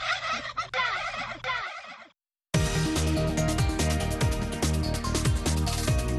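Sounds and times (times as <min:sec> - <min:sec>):
turkey gobbling: 0:00.0 - 0:02.0
busy music: 0:02.6 - 0:06.1.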